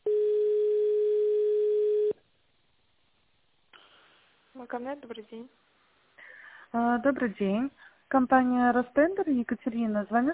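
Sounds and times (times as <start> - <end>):
steady telephone tone as a call to a company switchboard is transferred to an operator: 0.0 - 2.2
speech: 4.7 - 5.7, 6.7 - 10.3.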